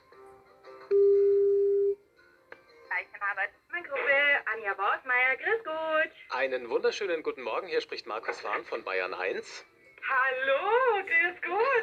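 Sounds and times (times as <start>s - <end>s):
faint noise: 0.0s - 11.8s
telephone call to a company ringing out: 0.9s - 2.0s
speech: 4.6s - 11.8s.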